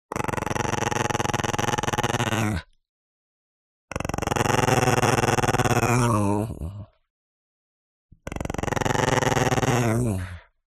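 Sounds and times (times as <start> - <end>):
Chihuahua growling: 0.1 - 2.8, 3.9 - 7.0, 8.2 - 10.6.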